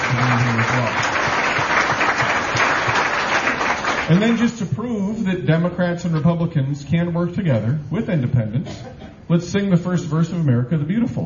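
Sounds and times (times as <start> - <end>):
audience applause at a political gathering: 0.0 - 4.4
speech: 4.1 - 11.2.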